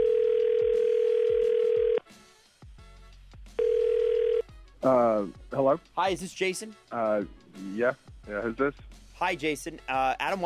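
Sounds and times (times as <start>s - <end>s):
outgoing phone call ringing tone heard through the line: 0.0s - 2.0s, 3.6s - 4.5s
speech: 4.8s - 10.4s.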